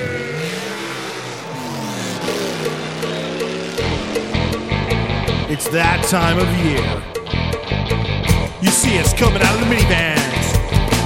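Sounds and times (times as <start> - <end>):
car engines revving: 0.0 - 8.6
speech: 5.5 - 7.2, 8.9 - 10.3.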